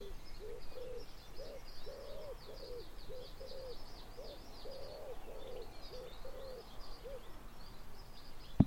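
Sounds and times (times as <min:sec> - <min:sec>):
Common wood pigeon cooing: 0:00.0 - 0:07.3
faint high twittering from other birds: 0:00.0 - 0:08.6.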